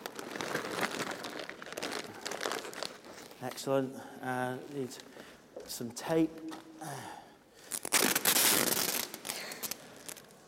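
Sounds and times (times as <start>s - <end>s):
reused wrapping paper crinkling as it is taken apart: 0.0s - 3.6s, 7.6s - 10.4s
speech: 3.4s - 7.2s.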